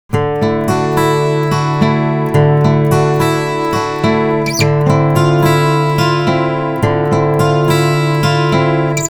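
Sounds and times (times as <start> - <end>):
guitars played simultaneously: 0.1 - 9.1.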